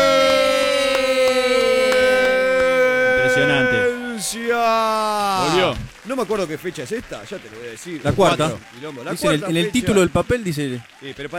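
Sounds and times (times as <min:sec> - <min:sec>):
siren wailing: 0:00.0 - 0:04.4
speech: 0:04.3 - 0:11.3.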